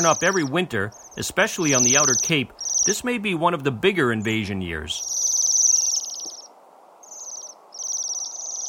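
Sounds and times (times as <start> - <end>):
Bohemian Waxwing flight calls: 0.0 - 3.0, 5.0 - 8.6
speech: 0.0 - 5.2.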